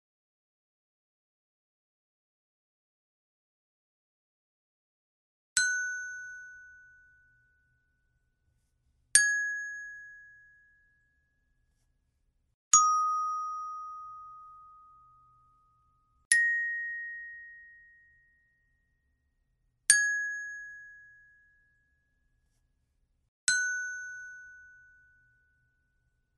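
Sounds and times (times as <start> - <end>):
glockenspiel: 5.6 - 8.1, 9.1 - 11.6, 12.7 - 19.2, 19.9 - 22.3, 23.5 - 26.3.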